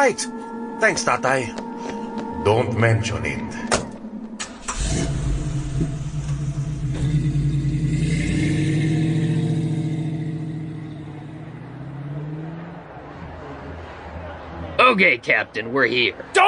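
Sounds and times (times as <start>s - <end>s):
speech: 0.0s - 3.8s, 4.9s - 5.2s, 15.0s - 16.4s
car engine starting and revving as it drives off: 3.6s - 15.2s.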